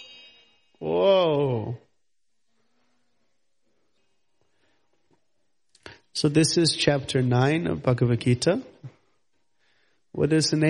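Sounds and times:
bell ringing: 0.0s - 1.4s
person calling out loudly: 0.8s - 1.8s
speech: 6.2s - 8.7s, 10.2s - 10.6s.

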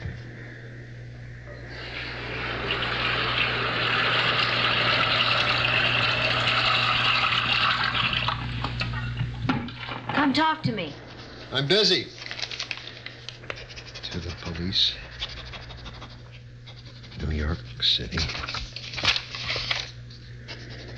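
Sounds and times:
low hum: 0.0s - 20.9s
water gushing from a tap into a bathtub for a hot bath: 1.8s - 10.2s
speech: 10.6s - 12.1s, 14.7s - 15.0s, 17.9s - 18.5s.

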